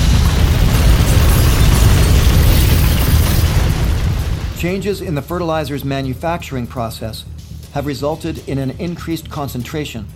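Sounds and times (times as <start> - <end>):
massive factory explosion with deep continuous roar: 0.0 - 5.6
speech: 4.6 - 10.1.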